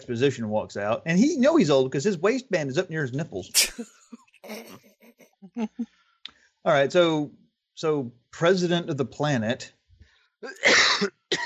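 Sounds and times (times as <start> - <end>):
speech: 0.0 - 4.1, 5.6 - 5.9, 6.6 - 9.8, 10.4 - 11.4
harsh loud cough: 3.6 - 4.0, 10.5 - 11.4.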